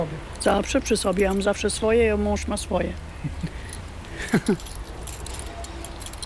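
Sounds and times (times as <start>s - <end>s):
speech: 0.4s - 3.4s, 4.3s - 4.7s
bunch of allotment keys jangling: 1.0s - 1.6s, 3.6s - 6.2s.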